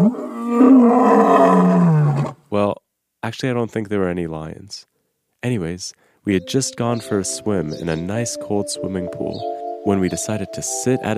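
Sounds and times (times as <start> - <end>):
lion roaring: 0.0 - 2.4
speech: 3.3 - 11.1.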